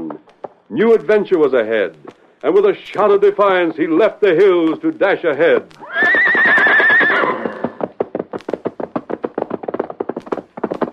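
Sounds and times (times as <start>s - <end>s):
horse hooves galloping: 0.0s - 10.9s
speech: 0.7s - 5.8s
white horse whinnying: 5.8s - 7.9s.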